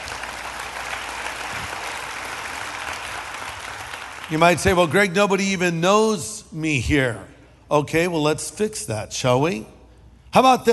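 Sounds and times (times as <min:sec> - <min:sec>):
large crowd applauding: 0:00.0 - 0:05.0
speech: 0:04.3 - 0:10.7.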